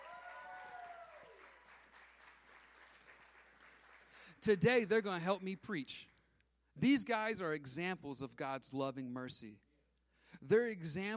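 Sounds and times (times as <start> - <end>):
crowd cheering: 0.0 - 4.1
crowd clapping: 0.0 - 5.8
speech: 4.4 - 6.1, 6.8 - 9.6, 10.3 - 11.1.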